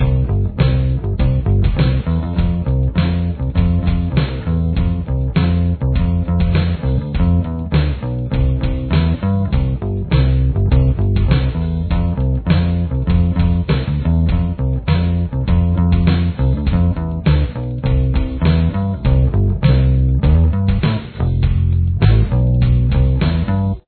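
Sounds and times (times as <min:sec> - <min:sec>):
verse bass line: 0:00.0 - 0:23.8.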